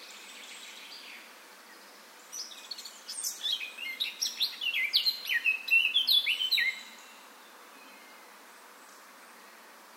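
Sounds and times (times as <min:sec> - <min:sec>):
Eurasian blackcap Sylvia atricapilla singing clear fluty whistled phrases: 0:02.4 - 0:07.1.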